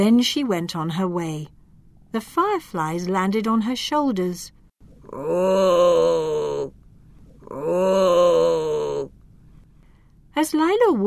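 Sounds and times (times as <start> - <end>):
speech: 0.0 - 6.8, 7.5 - 8.7, 10.4 - 11.0
deep moaning groans from a cave: 5.0 - 9.1.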